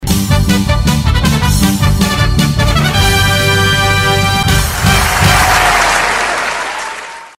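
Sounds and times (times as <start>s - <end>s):
brass fanfare: 0.1s - 6.8s
applause: 3.7s - 7.3s.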